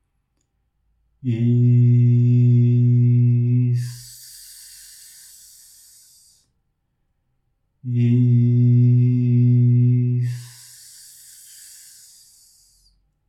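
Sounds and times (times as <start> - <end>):
lone voice chanting a mantra in two long hissing syllables: 1.2 - 6.5, 7.8 - 12.9.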